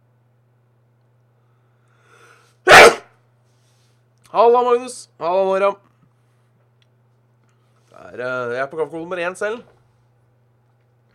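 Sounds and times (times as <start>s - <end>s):
sneeze: 2.7s - 3.1s
speech: 4.3s - 5.9s, 8.0s - 9.8s.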